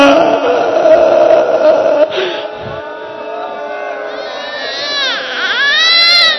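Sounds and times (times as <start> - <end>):
baby crying: 0.0 - 2.4, 4.1 - 6.3.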